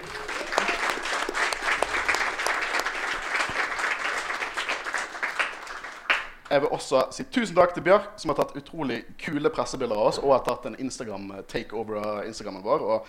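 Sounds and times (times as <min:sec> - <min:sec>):
live audience applause: 0:00.0 - 0:06.5
speech: 0:06.5 - 0:13.0.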